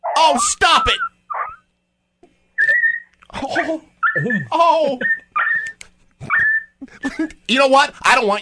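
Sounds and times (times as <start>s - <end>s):
dog whimpering and yipping: 0.0s - 1.6s, 2.6s - 3.1s, 4.0s - 6.8s
speech: 0.2s - 1.1s, 3.4s - 5.2s, 7.0s - 8.4s
person exclaiming: 3.4s - 5.1s.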